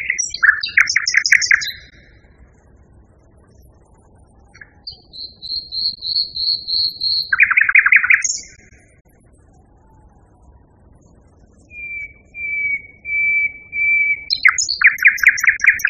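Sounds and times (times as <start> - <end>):
Common nightingale singing: 0.0 - 15.8.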